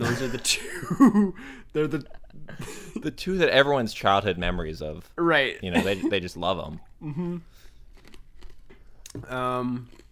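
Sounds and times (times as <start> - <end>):
speech: 0.2 - 7.6, 9.2 - 10.0
chewing ice: 7.9 - 9.2, 9.8 - 10.0.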